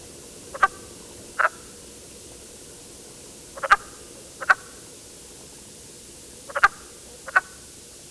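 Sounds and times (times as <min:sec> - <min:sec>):
wood frog: 0:00.5 - 0:01.8, 0:03.5 - 0:04.9, 0:06.4 - 0:07.7.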